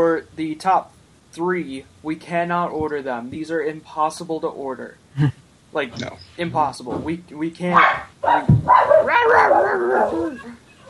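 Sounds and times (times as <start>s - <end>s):
speech: 0.0s - 10.8s
dog howling: 8.7s - 10.8s.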